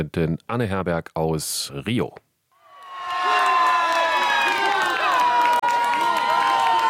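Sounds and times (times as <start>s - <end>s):
speech: 0.0s - 2.2s
football fans cheering and screaming at a World Cup goal in Rio de Janeiro: 2.6s - 6.8s.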